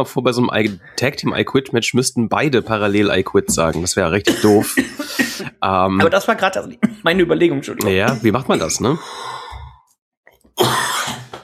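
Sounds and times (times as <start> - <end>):
speech: 0.0 - 9.4
person coughing: 4.2 - 5.6, 7.9 - 8.9, 10.6 - 11.4.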